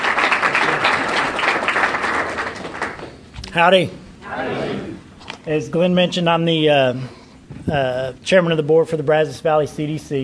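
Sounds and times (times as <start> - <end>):
crowd applauding: 0.0 - 3.2
speech: 3.6 - 10.2.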